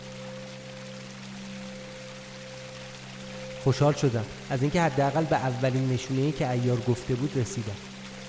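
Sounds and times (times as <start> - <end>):
waterfall rushing water: 0.0 - 8.2
speech: 3.6 - 7.9.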